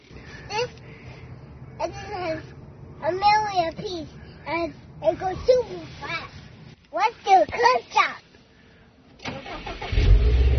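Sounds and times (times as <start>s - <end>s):
speech: 3.2s - 6.3s, 7.0s - 8.2s
car engine cranking and starting: 9.1s - 10.5s.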